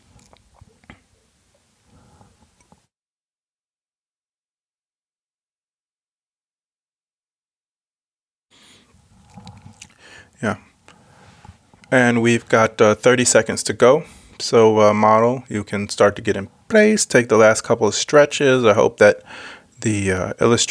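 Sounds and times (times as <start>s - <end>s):
person sipping water: 0.0s - 2.8s, 8.8s - 10.2s
speech: 10.4s - 10.7s, 11.9s - 20.7s.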